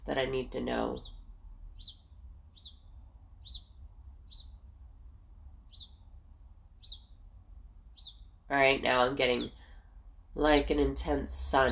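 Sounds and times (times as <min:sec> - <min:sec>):
steady low outdoor rumble: 0:00.0 - 0:11.7
speech: 0:00.1 - 0:01.2, 0:01.8 - 0:02.0, 0:08.5 - 0:09.6, 0:10.4 - 0:11.7
short high bird chirps: 0:00.9 - 0:04.6, 0:05.6 - 0:06.1, 0:06.8 - 0:07.2, 0:07.9 - 0:08.4.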